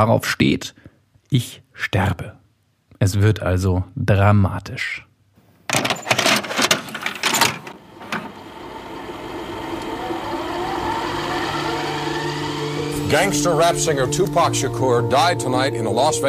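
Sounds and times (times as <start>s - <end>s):
speech: 0.0s - 2.4s, 3.0s - 5.1s, 13.1s - 16.2s
plastic cassette clacking and rattling pushed into old cassette recorder: 5.7s - 8.4s
steady mechanical whir of cassette tape starting to run: 5.8s - 14.3s.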